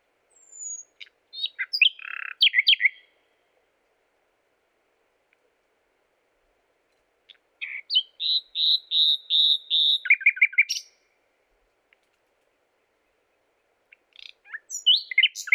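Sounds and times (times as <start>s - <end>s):
common nightingale singing: 0.3s - 3.2s, 7.3s - 11.1s, 13.2s - 15.5s.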